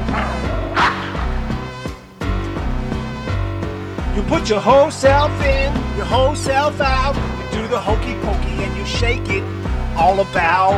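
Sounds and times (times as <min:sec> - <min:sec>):
dog barking: 0:00.0 - 0:01.5
bouncy steady music: 0:00.0 - 0:10.7
speech: 0:04.3 - 0:10.7.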